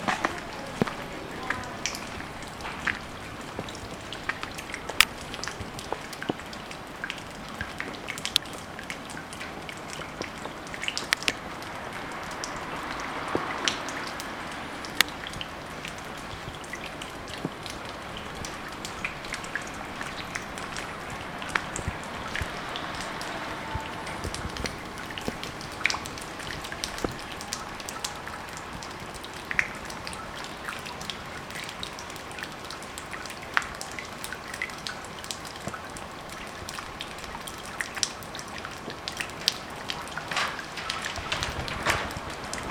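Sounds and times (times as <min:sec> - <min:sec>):
water drops: 0:00.0 - 0:42.6.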